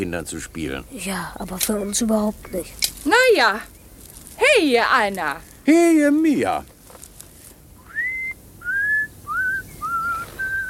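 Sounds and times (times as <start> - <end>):
speech: 0.0 - 3.8, 4.6 - 6.7
man whistling a short wandering tune in a garden: 7.9 - 10.6.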